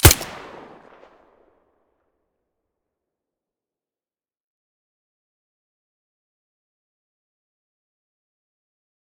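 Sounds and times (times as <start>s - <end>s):
silenced pistol shot: 0.0s - 1.0s.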